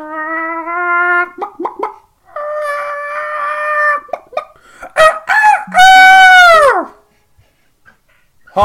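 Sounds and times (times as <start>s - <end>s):
person imitating a chicken: 0.0s - 4.4s, 5.0s - 7.0s
person imitating a rooster crow: 5.0s - 6.9s.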